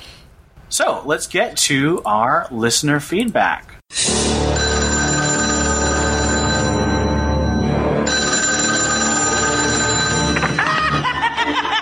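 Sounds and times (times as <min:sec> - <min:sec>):
speech: 0:00.7 - 0:04.1
telephone ringing: 0:04.5 - 0:11.1
laughter: 0:10.2 - 0:11.7.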